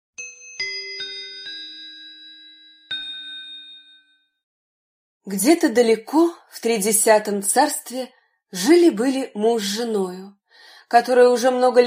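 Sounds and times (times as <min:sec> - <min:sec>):
small bell ringing: 0:00.2 - 0:04.4
speech: 0:05.2 - 0:11.8.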